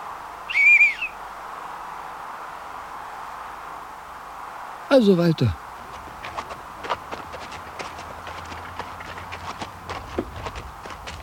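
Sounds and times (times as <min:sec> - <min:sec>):
low constant hiss: 0:00.0 - 0:11.2
person whistling to call for help: 0:00.5 - 0:01.1
speech: 0:04.9 - 0:05.6.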